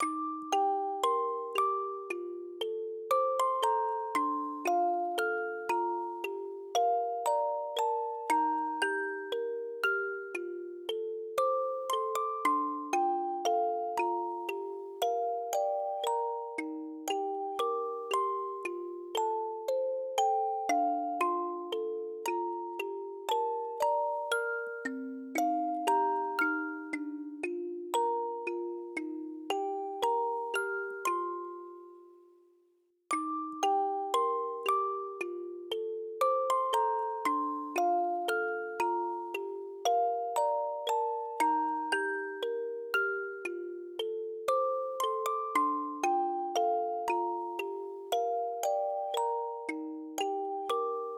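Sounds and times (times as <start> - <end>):
robotic synth music box: 0.0 - 32.4, 33.1 - 51.1.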